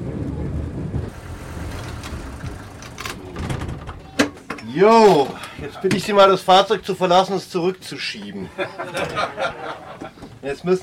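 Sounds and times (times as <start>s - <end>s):
steady low railbus rumble: 0.0s - 5.8s
window being cranked open inside a railbus: 1.1s - 5.3s
speech: 4.8s - 10.8s
laughter: 8.3s - 10.4s.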